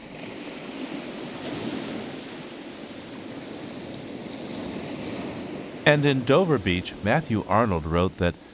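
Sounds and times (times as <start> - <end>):
gentle waves lapping on a beach shoreline: 0.0 - 8.5
speech: 5.8 - 8.4.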